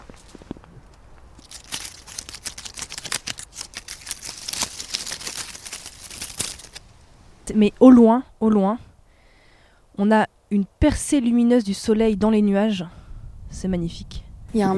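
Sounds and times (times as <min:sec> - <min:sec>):
dry dead leaves rustling and crunching: 0:00.0 - 0:07.7
speech: 0:07.5 - 0:08.9, 0:10.0 - 0:14.7.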